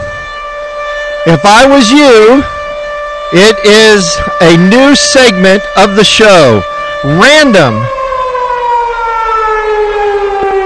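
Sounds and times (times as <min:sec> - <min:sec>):
siren wail: 0:00.0 - 0:10.6
speech: 0:01.2 - 0:02.6, 0:03.3 - 0:08.0.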